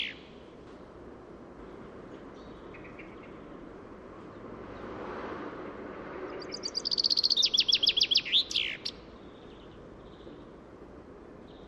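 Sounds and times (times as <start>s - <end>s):
common chaffinch song: 0.0s - 1.0s, 1.6s - 4.9s, 6.2s - 10.6s, 11.4s - 11.6s
low background noise: 0.0s - 11.6s.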